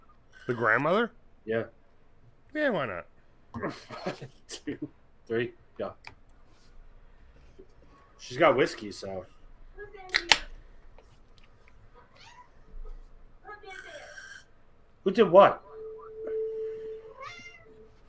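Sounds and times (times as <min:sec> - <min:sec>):
speech: 0:00.5 - 0:01.8, 0:02.5 - 0:06.2, 0:08.2 - 0:10.3, 0:15.0 - 0:15.6
cat meowing and yowling: 0:12.1 - 0:12.6, 0:15.8 - 0:18.0.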